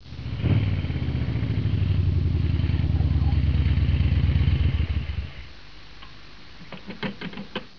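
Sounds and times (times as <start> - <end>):
motorcycle stopping: 0.0 - 5.5.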